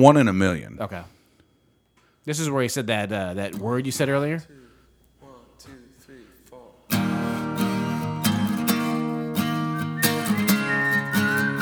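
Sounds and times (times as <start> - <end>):
speech: 0.0 - 1.2, 2.3 - 4.6
strummed chords: 6.9 - 11.6
whistled melody: 7.0 - 11.6.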